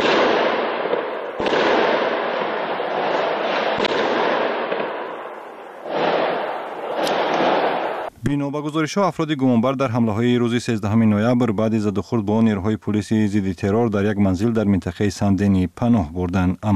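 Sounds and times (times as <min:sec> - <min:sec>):
heavy gunfire during an anti-terror police special operation in Saint-Denis: 0:00.0 - 0:08.1
speech: 0:08.3 - 0:16.7.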